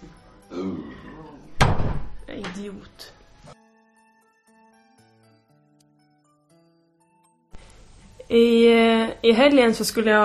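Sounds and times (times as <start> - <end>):
door slamming shut: 1.6 - 2.3
speech: 2.6 - 3.2, 8.3 - 10.2.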